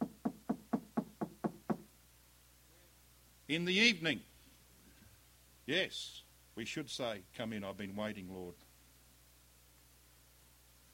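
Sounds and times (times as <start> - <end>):
knocking on a wooden door: 0.0 - 1.9
speech: 3.5 - 4.3, 5.7 - 8.6.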